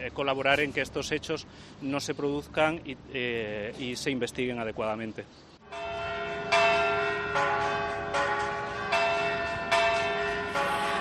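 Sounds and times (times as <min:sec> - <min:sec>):
speech: 0:00.0 - 0:05.5
church bells ringing: 0:05.6 - 0:10.9.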